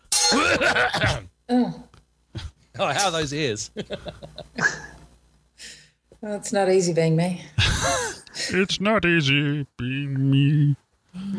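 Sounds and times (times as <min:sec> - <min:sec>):
person clearing throat: 0:00.2 - 0:01.3
person coughing: 0:00.2 - 0:01.3
speech: 0:00.3 - 0:04.8, 0:05.6 - 0:11.3
laughter: 0:00.4 - 0:01.2, 0:03.7 - 0:05.0, 0:07.6 - 0:08.5.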